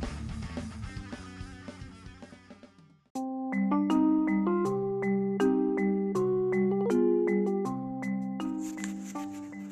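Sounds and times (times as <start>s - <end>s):
phone-style ringtone jingle of plucked notes and chiming tones: 3.2s - 9.7s.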